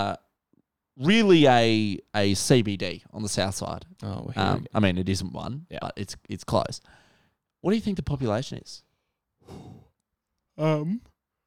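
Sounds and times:
speech: 0.0 - 0.2, 1.0 - 7.0, 7.6 - 8.9, 9.5 - 9.8, 10.6 - 11.1
person yawning: 9.4 - 9.9.

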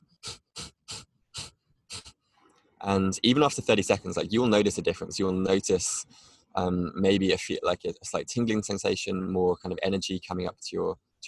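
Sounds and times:
rapid nasal exhales in breath-of-fire breathwork: 0.0 - 2.6
speech: 2.8 - 11.2.

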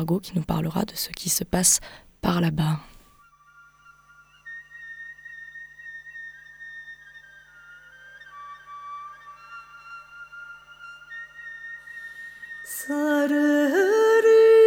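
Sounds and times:
speech: 0.0 - 2.9
breathy kaval flute playing a slow sustained melody: 3.2 - 14.5.

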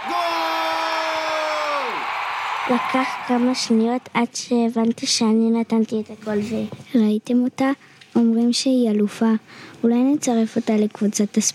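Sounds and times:
dense roar of crowd noise: 0.0 - 4.1
speech: 2.7 - 11.5.

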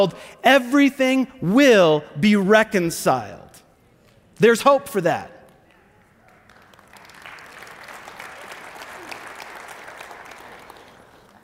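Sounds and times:
speech: 0.0 - 3.4, 4.4 - 5.4
audience applauding during a sermon: 5.9 - 11.4.

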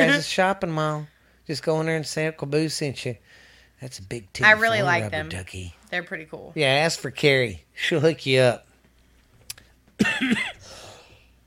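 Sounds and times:
speech: 0.0 - 8.7, 10.0 - 10.8
harsh raspy cough: 10.0 - 10.8.

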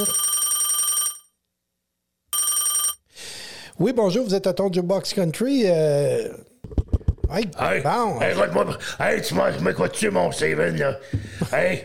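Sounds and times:
speech: 0.0 - 0.3, 3.8 - 11.8
telephone ringing loudly with a rapid trilling bell: 0.0 - 1.3, 2.4 - 3.1.

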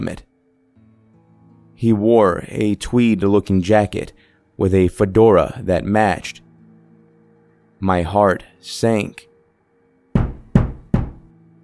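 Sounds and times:
speech: 0.0 - 0.3, 1.8 - 6.4, 7.8 - 9.3
loud heavy knocks on a door: 10.2 - 11.3.

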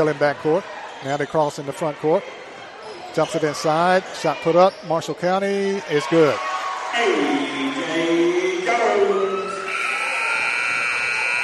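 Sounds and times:
speech: 0.0 - 2.4, 3.2 - 7.4
crowd murmuring in a large indoor space: 6.9 - 9.7
basketball end-of-quarter electronic buzzer blaring: 9.7 - 11.4.

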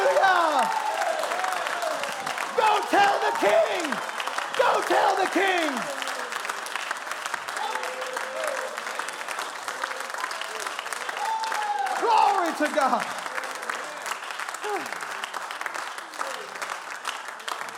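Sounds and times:
church congregation cheering and shouting in rejoicing: 0.0 - 6.4, 7.5 - 14.0, 14.6 - 15.0
church congregation in a tabernacle applauding in rejoicing: 0.0 - 17.7
speech: 2.9 - 6.1, 12.6 - 13.2.

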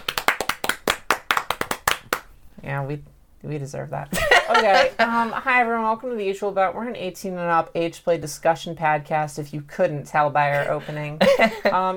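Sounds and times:
hands clapping: 0.0 - 2.3
speech: 2.6 - 11.9
laughter: 4.1 - 5.4, 11.2 - 11.8.

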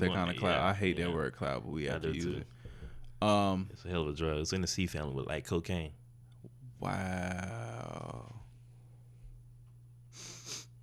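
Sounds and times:
speech: 0.0 - 2.6, 3.2 - 6.0, 6.8 - 8.4
low steady hum: 0.0 - 10.8
nasal sniffs: 10.1 - 10.7.

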